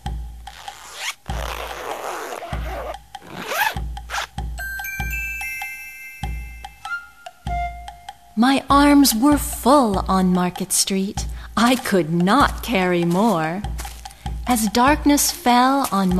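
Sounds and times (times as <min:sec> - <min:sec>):
zipper being pulled back and forth: 0:00.5 - 0:04.3
faint bright chiming tones: 0:04.6 - 0:08.4
speech: 0:08.4 - 0:13.7, 0:14.5 - 0:16.1.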